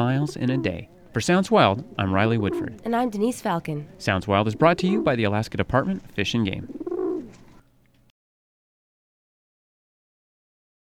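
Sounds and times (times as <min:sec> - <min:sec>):
wild rock dove cooing: 0:00.0 - 0:05.3, 0:06.5 - 0:07.6
speech: 0:00.0 - 0:06.8.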